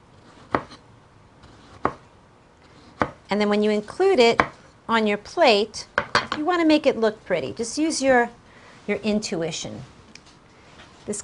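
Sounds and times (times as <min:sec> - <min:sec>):
knife slicing through tomatoes: 0:00.2 - 0:00.8, 0:01.4 - 0:02.0
speech: 0:03.3 - 0:10.0, 0:11.1 - 0:11.2.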